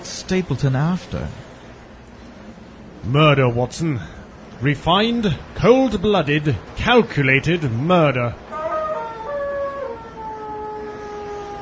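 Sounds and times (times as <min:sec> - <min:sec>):
speech: 0:00.3 - 0:01.5, 0:03.0 - 0:08.4
hound howling: 0:08.5 - 0:11.5.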